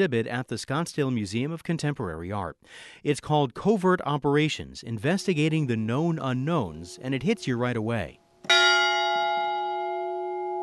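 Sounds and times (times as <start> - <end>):
speech: 0.0 - 8.6
large bell ringing in a museum art installation: 5.2 - 10.6.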